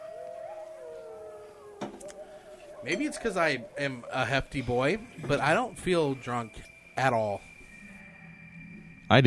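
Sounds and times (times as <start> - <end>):
long wavering howl-like tone: 0.0 - 9.2
speech: 2.8 - 7.5
glasses clinking in a toast: 2.9 - 3.6, 4.4 - 7.4.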